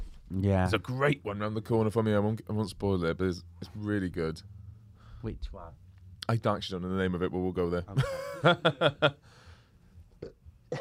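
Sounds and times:
speech: 0:00.3 - 0:04.6, 0:05.2 - 0:09.4
burps muffled into a jumper: 0:10.1 - 0:10.7.

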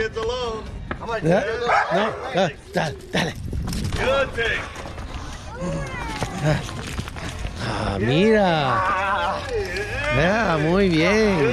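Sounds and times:
people's voices: 0:00.0 - 0:11.5
speech: 0:00.1 - 0:04.8, 0:05.6 - 0:07.0, 0:07.6 - 0:11.5
attack dog barking: 0:01.6 - 0:02.0.

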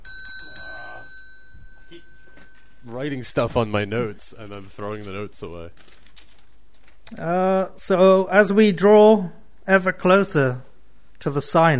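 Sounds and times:
bicycle bell dings: 0:00.0 - 0:02.8
speech: 0:02.8 - 0:06.0, 0:07.1 - 0:11.7.

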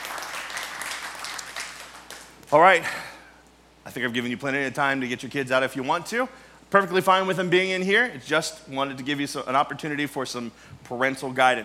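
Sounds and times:
audience applauding: 0:00.0 - 0:02.4
speech: 0:02.5 - 0:03.1, 0:03.9 - 0:11.6.

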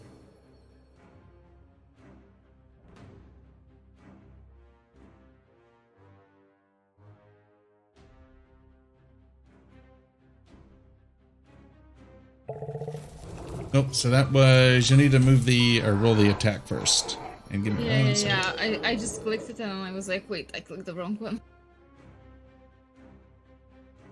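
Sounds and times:
lion roar sound effect with deep growling: 0:12.5 - 0:19.9
speech: 0:13.7 - 0:21.4.

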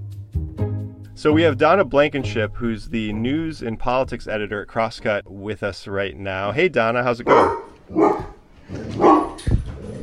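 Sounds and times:
speech: 0:01.2 - 0:08.2
dog barking: 0:07.3 - 0:09.5.

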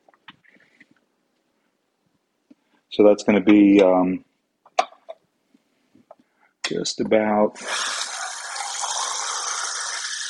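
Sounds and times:
speech: 0:02.9 - 0:04.3, 0:06.8 - 0:08.0
water poured from a can into a pot: 0:07.6 - 0:10.2.

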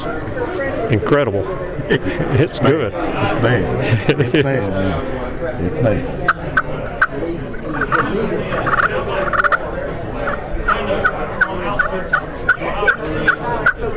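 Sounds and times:
speech: 0:00.0 - 0:06.6
laughter: 0:01.5 - 0:13.9
turkey yelps and clucks from a hunting call with a soundboard: 0:06.2 - 0:09.6, 0:10.2 - 0:13.9.

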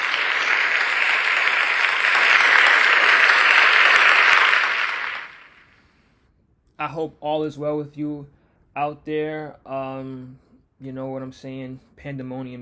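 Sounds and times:
crowd applauding: 0:00.0 - 0:05.8
speech: 0:06.8 - 0:12.6.

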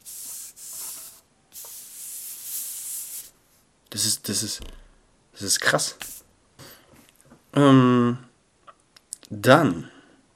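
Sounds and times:
sheet of paper slid under a fingertip: 0:00.0 - 0:03.3
speech: 0:04.0 - 0:06.1, 0:07.6 - 0:08.2, 0:09.4 - 0:09.9.

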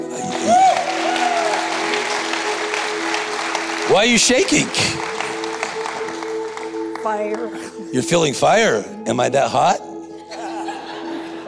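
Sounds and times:
audience clapping: 0:00.0 - 0:07.8
whooping cheer: 0:00.2 - 0:02.1
speech: 0:03.9 - 0:05.1, 0:07.0 - 0:09.9
laughter: 0:10.1 - 0:11.4.

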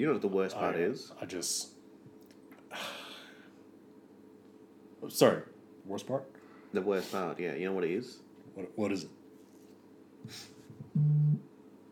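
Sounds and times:
speech: 0:00.0 - 0:01.8, 0:02.7 - 0:03.0, 0:05.0 - 0:09.2, 0:10.2 - 0:11.5
soft rustle: 0:09.3 - 0:09.9
mobile phone low buzz: 0:11.0 - 0:11.4.

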